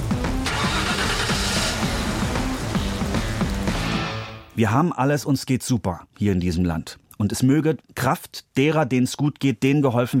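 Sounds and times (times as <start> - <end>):
car engine starting: 0.0 - 4.2
speech: 4.6 - 10.1.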